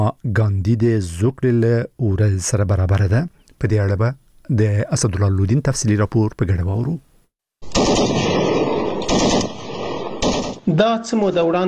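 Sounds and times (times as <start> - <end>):
speech: 0.0 - 8.2, 10.7 - 11.6
automatic gunfire in an exchange between Afghan and Pakistani border soldiers: 7.6 - 10.7.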